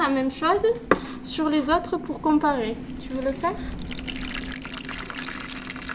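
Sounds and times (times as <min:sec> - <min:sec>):
speech: 0:00.1 - 0:03.9
water poured over pebbles to imitate a small rain shower: 0:03.0 - 0:05.9.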